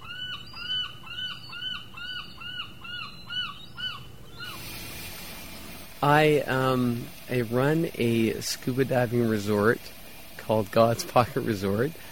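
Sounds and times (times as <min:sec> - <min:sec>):
gulls calling on the shore: 0:00.0 - 0:12.1
rush of broadband noise: 0:04.4 - 0:12.1
speech: 0:06.0 - 0:12.0.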